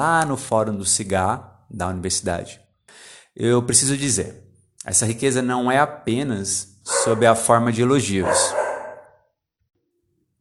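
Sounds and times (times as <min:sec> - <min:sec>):
speech: 0:00.0 - 0:08.6
dog barking: 0:06.9 - 0:09.3.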